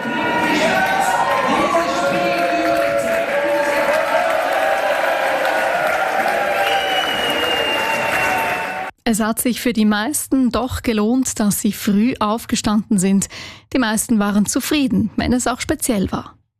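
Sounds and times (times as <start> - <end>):
crowd cheering and applauding at final whistle: 0.0 - 8.9
people shouting and whooping: 0.0 - 8.9
speech: 9.1 - 16.4.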